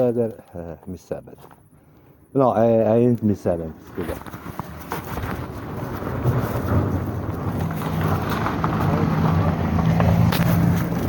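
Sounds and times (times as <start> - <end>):
speech: 0.0 - 1.6, 2.3 - 4.6
car passing by with low engine rumble: 5.9 - 11.0.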